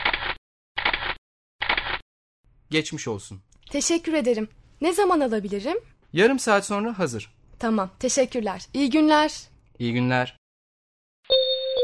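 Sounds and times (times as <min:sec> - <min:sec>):
camera shutter as a portrait photo is taken: 0:00.0 - 0:02.0
speech: 0:02.7 - 0:10.4.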